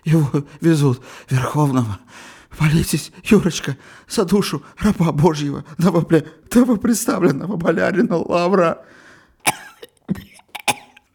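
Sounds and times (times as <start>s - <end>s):
speech: 0.0s - 9.5s
wounded man coughing: 9.4s - 11.0s.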